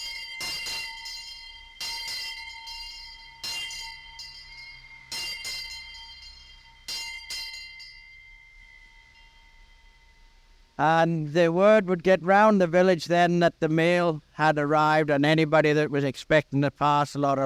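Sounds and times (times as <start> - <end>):
railway station master's handbell ringing: 0.0 - 10.4
speech: 10.8 - 17.4.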